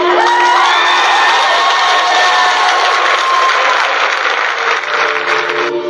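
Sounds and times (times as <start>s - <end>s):
crowd whooping and cheering with high-pitched shouts: 0.0s - 5.7s.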